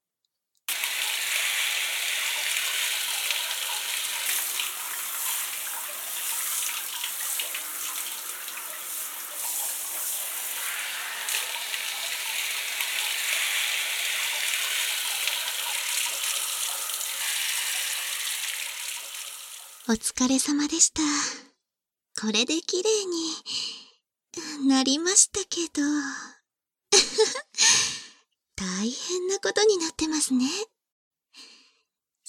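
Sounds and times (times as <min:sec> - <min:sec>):
running water rinsing a freshly cleaned surface: 0:00.7 - 0:19.9
speech: 0:19.9 - 0:21.3, 0:22.2 - 0:23.8, 0:24.6 - 0:26.3, 0:28.8 - 0:30.7.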